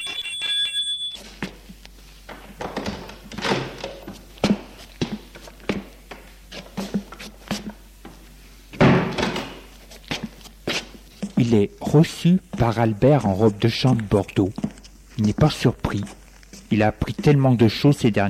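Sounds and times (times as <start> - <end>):
electronic doorbell ringing at a front door: 0.0 - 1.3
shuffling handling noises: 1.0 - 8.8, 9.5 - 18.0
door thuds and knocks: 8.8 - 9.6
speech: 11.5 - 14.6, 15.2 - 18.2.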